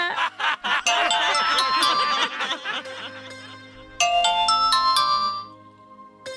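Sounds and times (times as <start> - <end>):
telephone ringtone: 0.9 - 2.6, 4.0 - 5.6.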